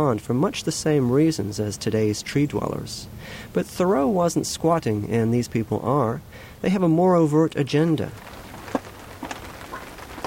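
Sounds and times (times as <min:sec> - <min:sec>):
speech: 0:00.0 - 0:08.4
soft steady rain on a rainy day: 0:00.0 - 0:10.2
raindrops pattering: 0:07.6 - 0:10.2.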